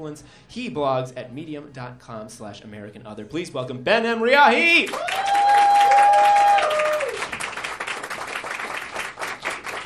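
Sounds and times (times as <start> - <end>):
speech: 0.0 - 6.5
crowd applauding: 4.9 - 9.8.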